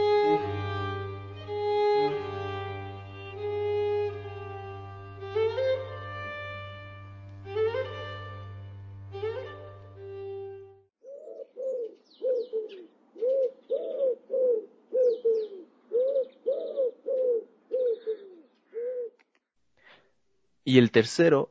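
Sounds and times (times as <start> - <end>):
sustained harmonic instrumental music: 0.0 - 10.9
wood pigeon cooing: 11.0 - 19.2
speech: 20.7 - 21.4.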